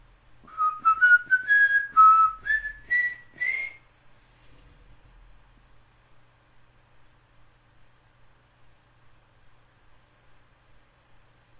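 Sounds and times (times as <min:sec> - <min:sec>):
person whistling a short rising melody: 0:00.4 - 0:03.8.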